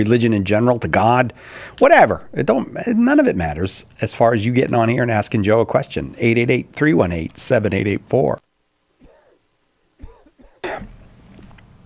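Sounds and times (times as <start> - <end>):
speech: 0.0 - 8.5
person coughing heavily: 9.0 - 9.4, 10.0 - 11.0.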